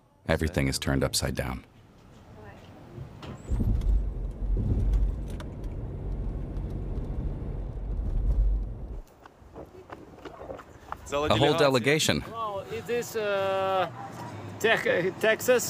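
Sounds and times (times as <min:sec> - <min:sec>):
speech: 0:00.3 - 0:01.8, 0:11.1 - 0:15.6
car engine rumbling as it pulls up and parks: 0:02.9 - 0:09.0.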